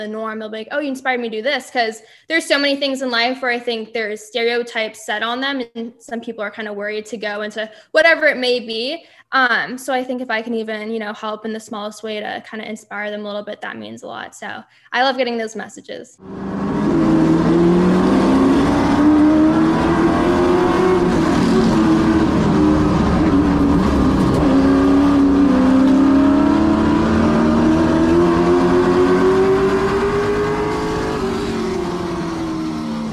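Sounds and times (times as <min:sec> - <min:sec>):
speech: 0:00.0 - 0:17.0
race car engine revving on track: 0:16.2 - 0:33.1.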